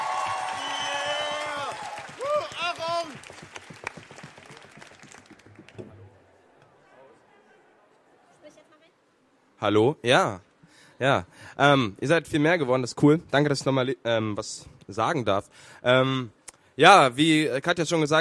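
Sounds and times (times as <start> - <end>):
audience cheering and shouting: 0.0 - 3.2
audience snapping fingers: 0.0 - 6.0
audience stamping: 1.3 - 6.2
speech: 9.6 - 18.1.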